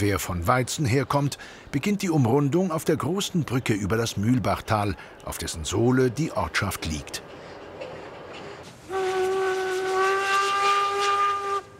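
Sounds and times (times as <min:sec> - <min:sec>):
speech: 0:00.0 - 0:07.4
steam train whistle blast: 0:08.9 - 0:11.7.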